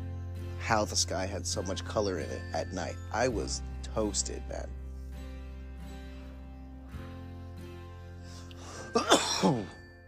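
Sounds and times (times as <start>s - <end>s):
speech: 0.6s - 4.8s, 9.0s - 9.8s
person coughing after pipe ash went down the throat: 8.9s - 9.8s.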